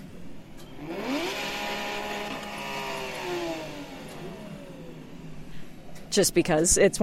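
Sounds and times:
Porsche 911 GT3 RS engine revving: 0:00.5 - 0:05.7
speech: 0:06.1 - 0:07.0.

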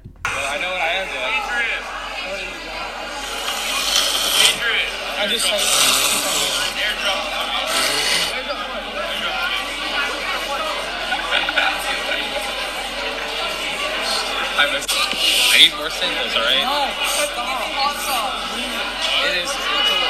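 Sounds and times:
laughter: 0:00.3 - 0:20.0
man blowing his nose in honks and snorts: 0:03.2 - 0:04.6, 0:05.4 - 0:06.8, 0:07.6 - 0:08.4, 0:14.9 - 0:15.6
speech: 0:05.2 - 0:06.4, 0:14.6 - 0:17.7.

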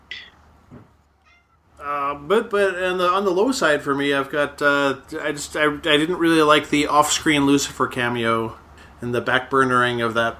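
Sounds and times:
cat meowing: 0:01.2 - 0:01.6
speech: 0:01.8 - 0:10.3.

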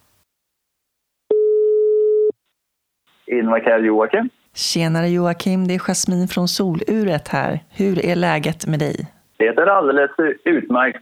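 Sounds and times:
telephone ringing tone during an outgoing call: 0:01.3 - 0:02.3
speech: 0:03.3 - 0:11.0.

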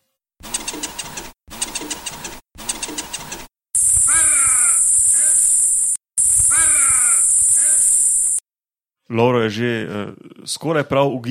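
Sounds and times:
bird calling loudly and harshly: 0:03.8 - 0:08.4
steady hiss: 0:03.8 - 0:08.4
speech: 0:09.1 - 0:11.2.

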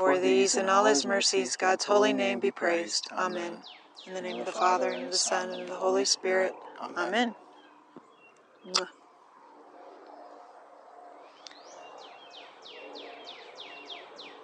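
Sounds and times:
faint murmur: 0:00.0 - 0:07.5
birds chirping outdoors: 0:00.0 - 0:14.4
speech: 0:00.2 - 0:07.4, 0:08.6 - 0:09.0.

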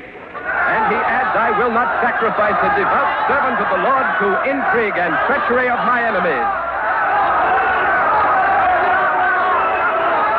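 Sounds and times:
large crowd shouting and roaring: 0:00.0 - 0:10.3
laughter: 0:00.6 - 0:06.4
speech: 0:01.4 - 0:06.7.

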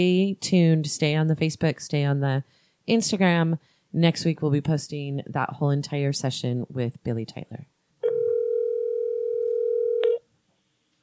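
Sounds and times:
speech: 0:00.0 - 0:07.7
steady telephone dial tone while calling back: 0:08.0 - 0:10.2.

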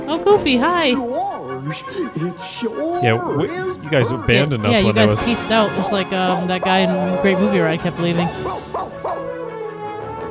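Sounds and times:
speech: 0:00.1 - 0:09.0
dog barking: 0:05.8 - 0:07.3, 0:08.4 - 0:09.4
dog whining: 0:06.0 - 0:07.6, 0:08.4 - 0:09.4.

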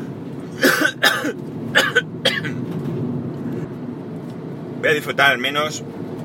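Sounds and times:
person coughing: 0:00.5 - 0:02.6
speech: 0:01.0 - 0:02.1, 0:04.9 - 0:05.9.

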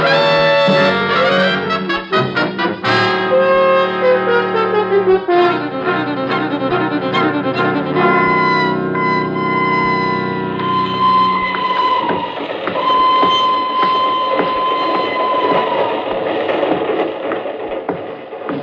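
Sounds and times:
passenger train rolling along the rails: 0:00.2 - 0:18.6
train wheels clacking over the track joints: 0:07.5 - 0:18.6
sustained whistle-like tone: 0:08.0 - 0:16.1.

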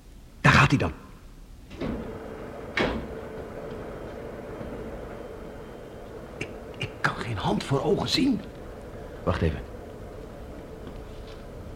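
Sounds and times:
quiet steady hum: 0:00.0 - 0:11.7
speech: 0:00.7 - 0:01.0, 0:07.5 - 0:08.5, 0:09.2 - 0:09.7
laboratory door clunk: 0:01.7 - 0:05.4
laboratory door opening with a scrape: 0:01.7 - 0:06.7.

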